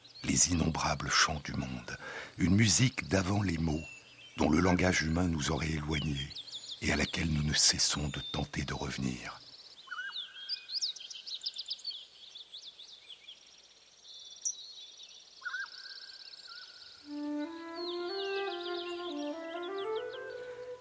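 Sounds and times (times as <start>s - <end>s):
birdsong with bright chirps and rapid trills: 0.0s - 13.4s, 14.0s - 20.7s
speech: 0.3s - 9.4s
clearer sustained melodic bird whistling: 17.0s - 20.7s.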